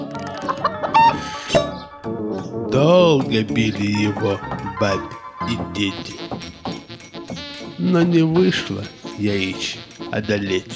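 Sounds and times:
black-and-white speckled hen clucking: 0:00.3 - 0:02.5
black-and-white speckled hen squawking: 0:00.5 - 0:02.0
speech: 0:02.7 - 0:06.5, 0:07.8 - 0:10.7.

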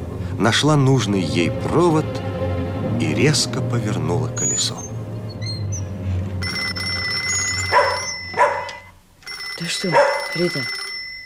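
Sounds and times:
speech: 0:00.4 - 0:02.3, 0:03.0 - 0:04.9, 0:09.7 - 0:10.8
telephone ringing with shrill electric tone: 0:06.4 - 0:11.2
dog barking: 0:07.7 - 0:08.9, 0:09.9 - 0:10.4.

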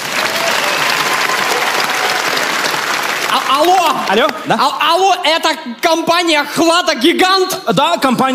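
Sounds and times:
dense applause from a sizable audience: 0:00.0 - 0:04.6
speech: 0:03.5 - 0:08.3.

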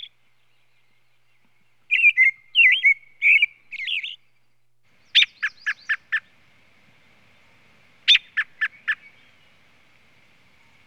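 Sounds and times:
American robin singing slurred whistled phrases: 0:01.9 - 0:04.4, 0:05.0 - 0:06.3, 0:08.1 - 0:09.6.

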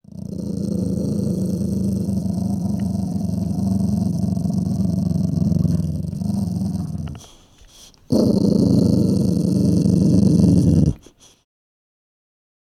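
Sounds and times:
dog snarling: 0:00.0 - 0:07.4, 0:08.1 - 0:11.4.

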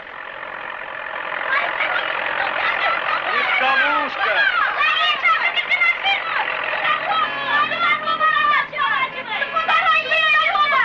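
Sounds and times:
truck engine droning: 0:00.0 - 0:10.8.

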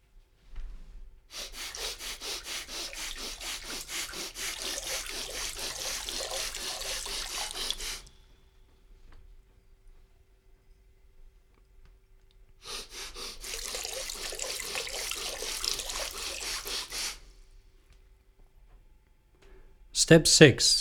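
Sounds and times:
air quickly sniffed in through the nose: 0:01.3 - 0:08.1, 0:12.6 - 0:17.3
water squeezed from puffed cheeks in didgeridoo breathing exercise: 0:01.3 - 0:08.1, 0:12.6 - 0:17.2
speech: 0:20.1 - 0:20.7.

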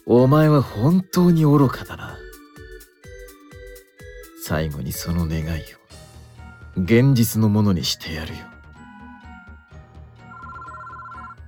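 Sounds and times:
speech: 0:00.1 - 0:02.1, 0:04.5 - 0:05.8, 0:06.8 - 0:08.5
telephone ringing with a bright electronic tone: 0:10.2 - 0:11.4.

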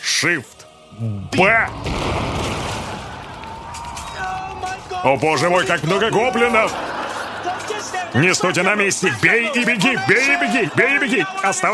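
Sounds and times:
speech: 0:00.2 - 0:02.5, 0:05.0 - 0:06.9, 0:07.8 - 0:11.7
explosion blowing open a gate: 0:01.2 - 0:08.2
crackling debris-like noise: 0:01.4 - 0:08.8
laughter: 0:02.9 - 0:11.7.

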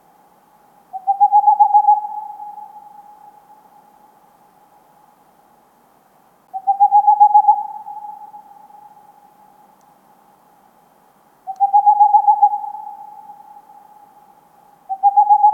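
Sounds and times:
Tengmalm's owl giving rapid bursts of soft hoots: 0:00.9 - 0:04.1, 0:06.5 - 0:09.6, 0:11.4 - 0:15.5.

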